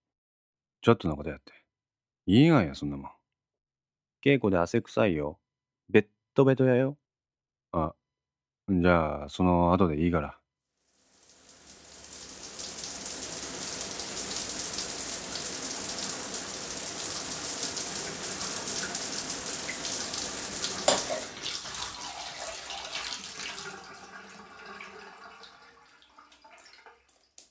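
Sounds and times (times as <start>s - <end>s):
speech: 0.8s - 1.6s, 2.3s - 3.2s, 4.2s - 7.0s, 7.7s - 8.0s, 8.7s - 10.4s
shower running in a hissing spray: 10.9s - 24.0s
water drips and trickles: 10.9s - 27.4s.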